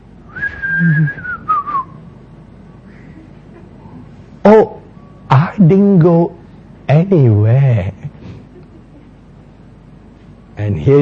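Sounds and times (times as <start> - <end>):
person whistling: 0.3 - 2.0
speech: 0.8 - 1.3, 5.7 - 8.0, 10.6 - 11.0.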